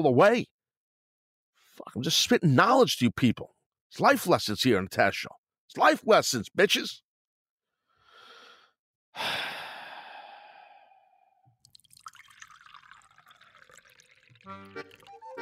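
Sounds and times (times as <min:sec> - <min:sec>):
speech: 0:00.0 - 0:00.5, 0:01.8 - 0:07.0, 0:09.2 - 0:09.6, 0:14.5 - 0:15.0
breathy exhale: 0:07.9 - 0:11.4
sigh-like rush: 0:09.2 - 0:11.3
water pouring into a glass: 0:11.6 - 0:15.4.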